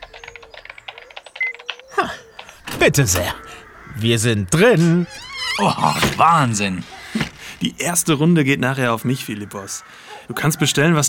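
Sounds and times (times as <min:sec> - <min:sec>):
simulated old-fashioned mechanical keyboard clicking from a device's small speaker: 0:00.0 - 0:01.8
speech: 0:02.8 - 0:11.0.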